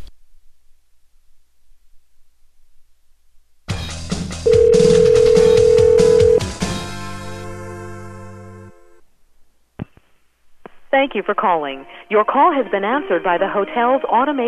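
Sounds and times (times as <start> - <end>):
telephone ringback tone on a hotel direct-dial line: 4.5 - 6.4
speech: 11.0 - 14.4.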